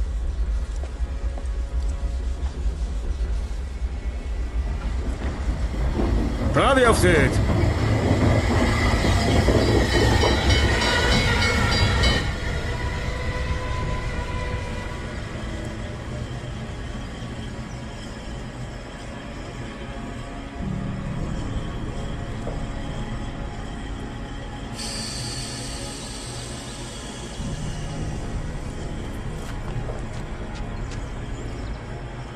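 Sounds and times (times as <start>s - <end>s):
train passing with rumble and rattling wheels: 0.0s - 32.3s
speech: 6.6s - 7.5s.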